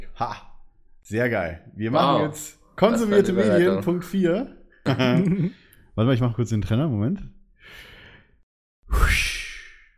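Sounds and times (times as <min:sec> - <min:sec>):
speech: 0:00.2 - 0:07.9, 0:08.9 - 0:09.3
laughter: 0:04.9 - 0:05.6
person inhaling deeply from a soundboard: 0:07.6 - 0:08.4.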